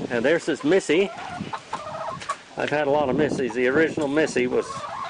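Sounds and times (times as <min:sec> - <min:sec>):
speech: 0:00.1 - 0:01.6, 0:02.6 - 0:04.8
chicken clucking: 0:00.3 - 0:05.0.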